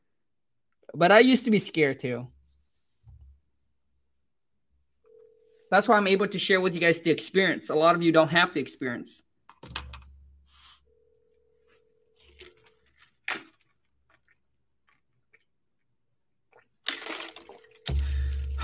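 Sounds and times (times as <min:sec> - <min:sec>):
speech: 0:01.0 - 0:02.4, 0:05.7 - 0:09.3
phone line ringback tone: 0:05.1 - 0:05.8, 0:10.6 - 0:12.8, 0:17.5 - 0:18.6.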